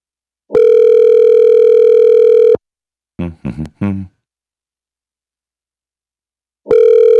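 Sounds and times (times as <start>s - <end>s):
ringback tone of an outgoing phone call: 0.6s - 2.6s, 6.7s - 7.1s.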